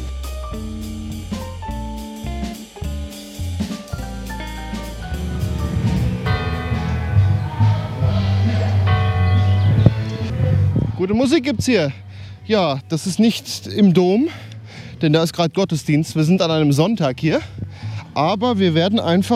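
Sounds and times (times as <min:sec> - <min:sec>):
cathedral church bells pealing: 0:04.0 - 0:11.6
speech: 0:11.0 - 0:19.3.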